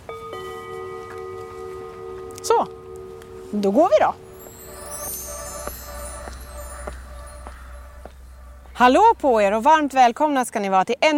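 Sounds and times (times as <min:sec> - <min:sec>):
gong-like chime strikes with bright metallic ring: 0:00.1 - 0:08.8
speech: 0:02.4 - 0:02.8, 0:03.5 - 0:04.2, 0:08.8 - 0:11.1.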